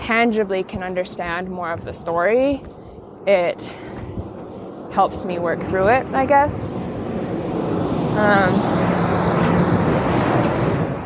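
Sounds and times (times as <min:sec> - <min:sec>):
speech: 0:00.1 - 0:04.0, 0:05.0 - 0:06.8, 0:08.2 - 0:08.8
big truck passing on the street: 0:04.1 - 0:11.0.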